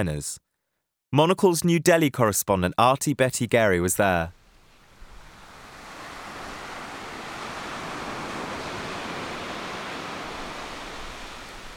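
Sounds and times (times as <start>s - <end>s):
speech: 0.0s - 0.4s, 1.1s - 4.4s
ocean waves breaking on a beach: 4.3s - 11.7s.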